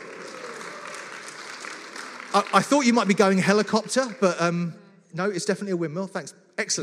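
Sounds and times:
audience applauding for a child holding up a windmill: 0.0s - 4.6s
speech: 2.3s - 6.8s.

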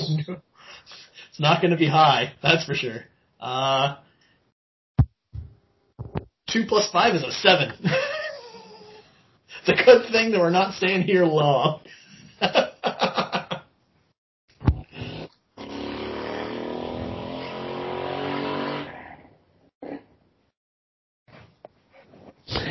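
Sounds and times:
speech: 0.2s - 4.1s, 6.5s - 8.1s, 9.6s - 12.7s
laughter: 12.0s - 13.6s
motorcycle driving past: 16.0s - 19.0s.

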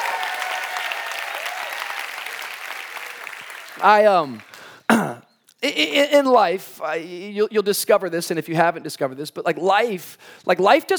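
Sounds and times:
church congregation clapping and cheering during a service: 0.0s - 5.2s
speech: 3.8s - 5.0s, 5.6s - 10.9s.

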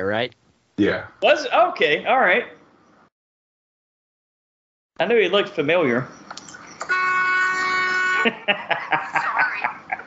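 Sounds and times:
speech: 0.0s - 2.6s, 5.0s - 6.5s, 8.2s - 9.7s
car horn blare: 6.8s - 8.4s
laughter: 8.2s - 10.0s.

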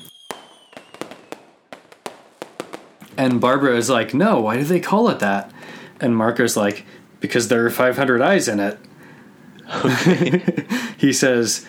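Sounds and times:
faint high whistling tone: 0.0s - 1.6s
confetti-popper blasts: 0.0s - 3.6s
fireworks crackling bangs: 0.0s - 5.5s
speech: 3.2s - 8.9s, 9.7s - 11.6s
laughter: 9.7s - 10.9s.

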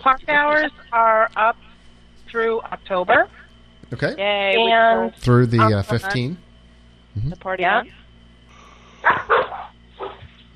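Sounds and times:
speech: 0.0s - 1.7s, 2.3s - 6.4s, 7.2s - 8.0s
faint steady hum: 0.0s - 10.5s
dog barking: 9.0s - 10.3s.

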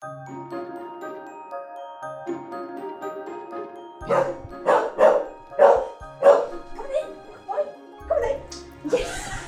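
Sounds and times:
dog barking loud sharp barks: 4.0s - 7.8s
laughter: 8.8s - 9.4s.

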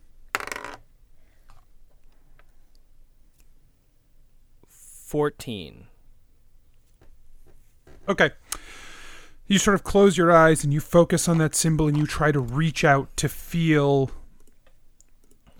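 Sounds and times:
dice clattering across a hard table surface: 0.3s - 0.8s
speech: 5.1s - 5.9s, 8.1s - 8.4s, 9.5s - 14.2s.

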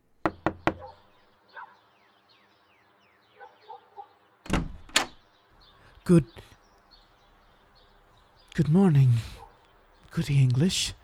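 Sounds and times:
faint birdsong: 0.0s - 11.0s
loud knocking on a door: 0.2s - 0.8s
heavy thuds of a door being answered and handled: 4.5s - 5.2s
speech: 6.1s - 6.5s, 8.6s - 9.4s, 10.2s - 11.0s.

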